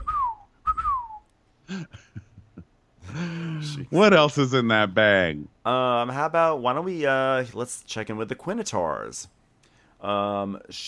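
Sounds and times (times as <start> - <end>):
person whistling sliding falling notes: 0.0 - 1.3
speech: 1.7 - 2.1, 3.1 - 9.4, 10.0 - 10.8.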